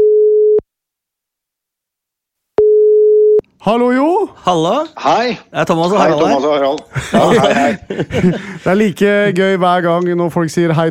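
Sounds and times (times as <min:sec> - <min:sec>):
telephone ringback tone while placing a call: 0:00.0 - 0:00.6, 0:02.6 - 0:03.4
speech: 0:03.6 - 0:10.8
laughter: 0:05.8 - 0:09.3.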